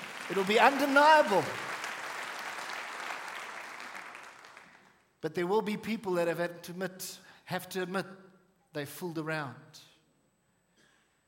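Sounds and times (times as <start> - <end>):
audience applauding: 0.0 - 5.0
speech: 0.3 - 1.7, 5.2 - 9.9.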